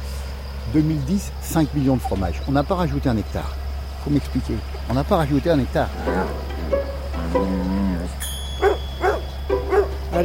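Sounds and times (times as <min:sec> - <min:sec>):
steady low hum: 0:00.0 - 0:10.2
speech: 0:00.7 - 0:06.5
drawn-out tonal low call: 0:05.5 - 0:10.2
six-year-old female Labrador dog barking: 0:08.6 - 0:10.0.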